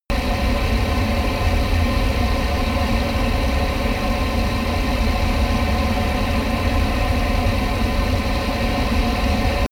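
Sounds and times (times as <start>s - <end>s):
Airbus A320 airplane turbine idling close: 0.1s - 9.6s.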